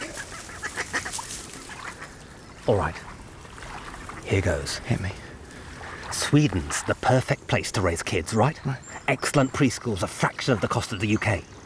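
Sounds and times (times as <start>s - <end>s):
duck quacking: 0.0s - 2.1s
speech: 2.7s - 3.1s, 4.3s - 5.3s, 6.2s - 11.6s.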